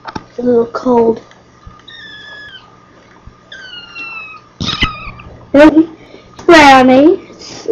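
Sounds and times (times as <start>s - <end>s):
speech: 0.4s - 1.3s, 5.5s - 5.9s, 6.6s - 7.7s
kitten meowing: 1.8s - 2.8s, 3.5s - 5.3s.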